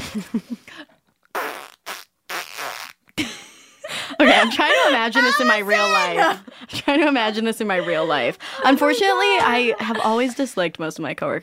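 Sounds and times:
speech: 0.1 - 1.0, 4.2 - 11.4
person imitating a fart with their mouth: 1.3 - 3.1
laughter: 3.2 - 10.7.

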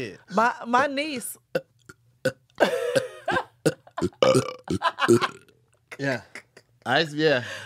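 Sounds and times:
speech: 0.0 - 5.4, 6.0 - 7.6
person burping on purpose: 1.6 - 5.6.

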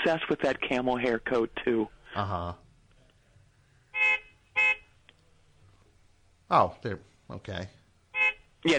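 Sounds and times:
speech: 0.0 - 2.6, 6.5 - 7.8
car horn honking: 3.9 - 4.9, 8.1 - 8.5.

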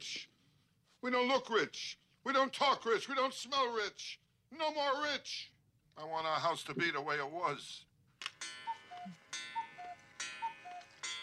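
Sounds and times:
speech: 1.0 - 7.9
short tonal chimes of a household clock: 8.4 - 11.2.

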